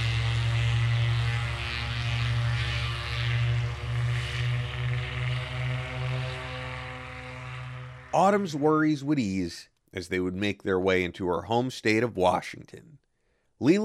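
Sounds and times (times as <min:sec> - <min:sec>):
propeller plane engine droning while taking off: 0:00.0 - 0:09.1
speech: 0:08.2 - 0:13.0, 0:13.6 - 0:13.8.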